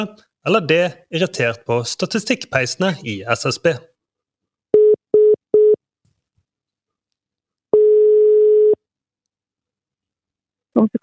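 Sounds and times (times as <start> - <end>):
speech: 0.0 - 3.9, 10.8 - 11.0
short telephone tones: 7.8 - 8.8.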